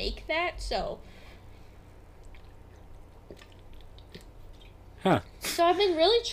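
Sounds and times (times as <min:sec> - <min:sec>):
quiet low hum: 0:00.0 - 0:06.3
speech: 0:00.1 - 0:01.2, 0:05.0 - 0:06.3
faint gulps: 0:02.0 - 0:05.4
soft wet swallowing: 0:02.0 - 0:05.4
person sipping water from a bottle: 0:02.1 - 0:05.4.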